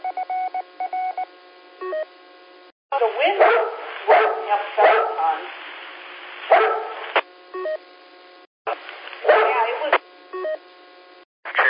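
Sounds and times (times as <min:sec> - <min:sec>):
two-way radio electronic beep tones: 0:00.0 - 0:02.1, 0:10.3 - 0:10.6
dogs barking through a two-way radio channel: 0:03.3 - 0:05.5, 0:06.5 - 0:07.1, 0:09.2 - 0:09.8.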